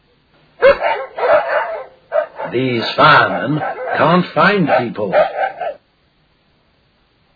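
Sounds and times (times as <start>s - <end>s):
dog barking: 0.6s - 5.8s
speech: 2.5s - 5.4s.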